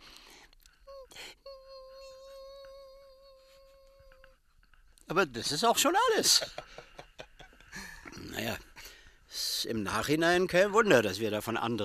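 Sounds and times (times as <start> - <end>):
voice imitating high-pitched electronic hum of microchips: 0.9 - 4.4
speech: 5.1 - 6.7, 9.6 - 11.8
laughter: 6.2 - 8.3.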